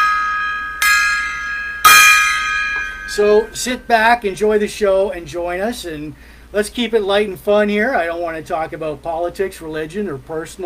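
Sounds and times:
gong being struck: 0:00.0 - 0:04.0
speech: 0:03.2 - 0:10.6.

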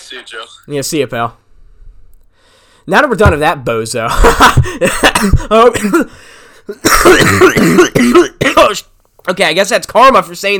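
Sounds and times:
speech: 0:00.1 - 0:01.4, 0:02.9 - 0:10.5
coughing fit: 0:04.4 - 0:08.8.

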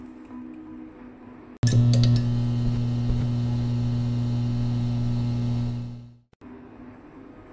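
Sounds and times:
electrical hum from short-circuiting lamp in a classroom: 0:01.6 - 0:06.3.

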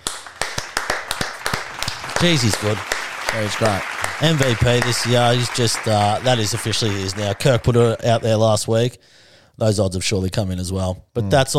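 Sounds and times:
hand clapping: 0:00.0 - 0:08.2
speech: 0:02.2 - 0:11.5.

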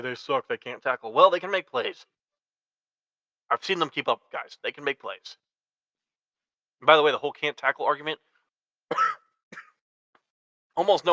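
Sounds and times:
speech: 0:00.0 - 0:02.2, 0:03.5 - 0:05.5, 0:06.8 - 0:08.3, 0:08.9 - 0:09.2, 0:10.8 - 0:11.1
person coughing: 0:08.9 - 0:09.8.

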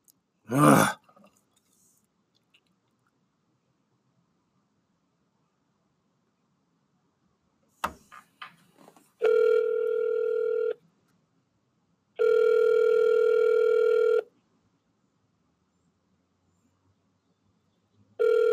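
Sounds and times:
phone ringback tone of an unanswered call: 0:09.2 - 0:10.8, 0:12.2 - 0:14.3, 0:18.2 - 0:18.5.

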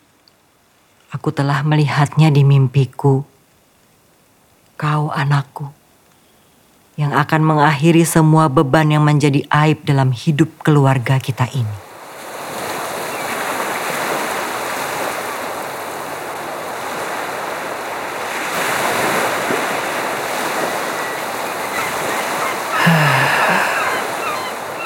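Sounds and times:
speech: 0:01.1 - 0:03.3, 0:04.8 - 0:05.8, 0:07.0 - 0:11.8
sea wind blowing steadily along the shore: 0:11.8 - 0:24.8
surf: 0:11.8 - 0:24.8.

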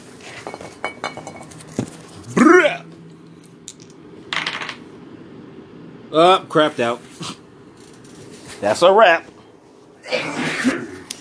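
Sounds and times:
speech: 0:06.1 - 0:07.3, 0:08.6 - 0:09.3
sneeze: 0:10.0 - 0:11.1.

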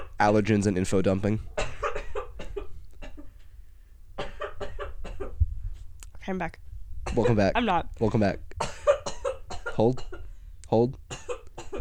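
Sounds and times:
low hum: 0:00.0 - 0:11.8
speech: 0:00.2 - 0:01.6, 0:06.3 - 0:08.5, 0:09.8 - 0:11.3
person coughing: 0:01.5 - 0:03.4, 0:04.2 - 0:05.4, 0:07.1 - 0:07.4, 0:08.6 - 0:10.3, 0:11.1 - 0:11.8.

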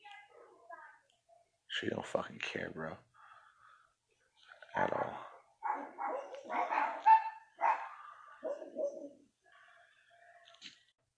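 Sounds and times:
speech: 0:01.8 - 0:03.1, 0:04.8 - 0:05.1
dog barking next door: 0:04.8 - 0:09.2.

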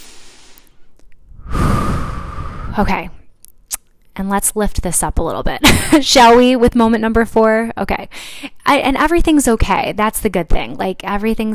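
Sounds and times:
person taking a deep breath during a guided pause: 0:00.0 - 0:03.2
speech: 0:02.8 - 0:03.2, 0:04.2 - 0:11.5.

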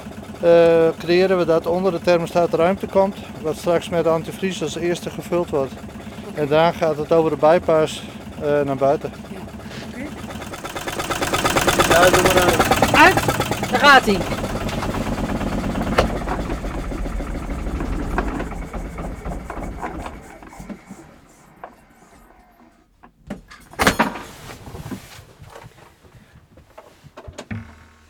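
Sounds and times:
diesel engine running with intake barking from a valve not fully closing: 0:00.0 - 0:22.3
speech: 0:00.4 - 0:09.3, 0:12.0 - 0:14.5
sharp clunk: 0:10.4 - 0:16.6, 0:23.8 - 0:24.6.

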